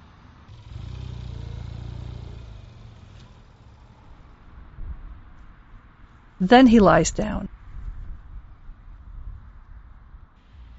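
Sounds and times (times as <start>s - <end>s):
vehicle engine rumbling past on a road: 0.0s - 6.0s
steady low traffic hum: 0.0s - 10.7s
clatter: 0.5s - 4.5s
speech: 6.4s - 7.5s.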